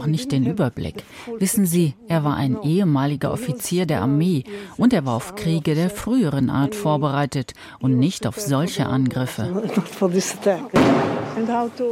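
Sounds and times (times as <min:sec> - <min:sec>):
speech: 0:00.0 - 0:11.9
heavy blast of artillery fired toward the Gaza Strip: 0:10.8 - 0:11.6.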